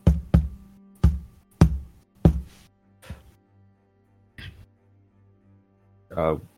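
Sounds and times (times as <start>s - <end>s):
heavy booming knocks: 0.0s - 2.5s
speech: 6.2s - 6.5s.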